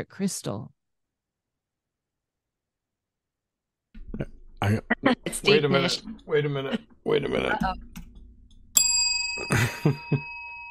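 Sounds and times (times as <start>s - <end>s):
speech: 0.0s - 0.8s, 4.2s - 7.9s, 9.4s - 10.3s
bell ringing: 8.7s - 10.6s
person coughing: 9.5s - 10.0s.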